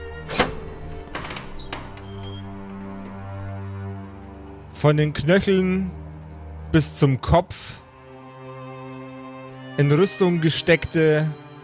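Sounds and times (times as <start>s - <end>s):
heavy door thudding and rattling open: 0.0s - 3.8s
speech: 4.8s - 6.0s, 6.7s - 7.8s, 9.8s - 11.4s.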